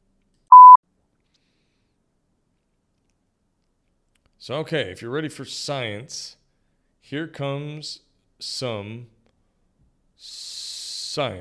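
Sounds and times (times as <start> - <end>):
steady electronic beep: 0.5 - 0.8
speech: 4.4 - 6.4, 7.0 - 9.2, 10.2 - 11.4.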